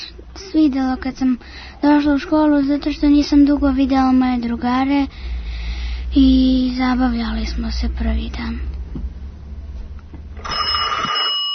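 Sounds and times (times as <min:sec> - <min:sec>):
low rumble: 0:00.0 - 0:10.4
speech: 0:00.5 - 0:05.2, 0:06.1 - 0:09.1
telephone ringing with a bright buzzing trill: 0:10.4 - 0:11.5.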